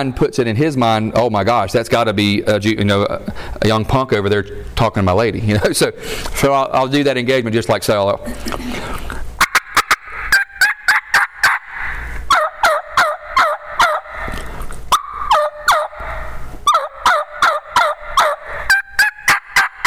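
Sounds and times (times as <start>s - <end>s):
speech: 0.0s - 9.1s
hen turkey yelps imitated on a hunter's call: 9.4s - 19.8s.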